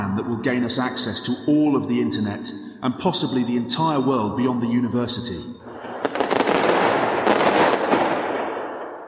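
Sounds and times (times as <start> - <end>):
speech: 0.2 - 5.6
fireworks crackling and popping: 5.7 - 8.8.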